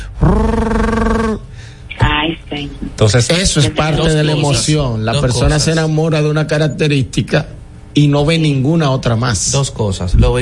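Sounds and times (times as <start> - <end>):
voice imitating exhaust roar of a car with a modified muffler: 0.0 - 1.5
speech: 3.0 - 10.4.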